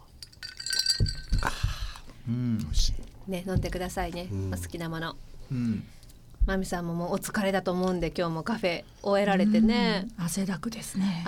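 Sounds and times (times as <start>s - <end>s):
beer glasses clinking in an evening toast: 0.0s - 1.8s
speech: 2.3s - 11.2s.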